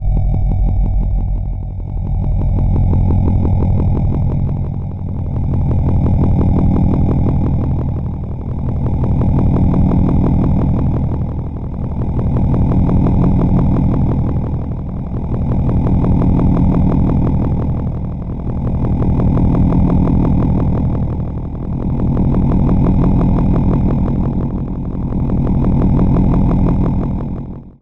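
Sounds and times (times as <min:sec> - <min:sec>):
low pulsating mechanical sounding drone: 0:00.0 - 0:27.8.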